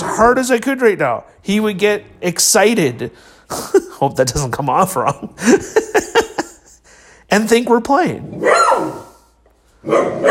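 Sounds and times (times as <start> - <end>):
speech: 0.2 - 6.2, 7.3 - 9.1, 9.8 - 10.2
laughter: 3.5 - 6.9
dog barking: 8.4 - 10.2.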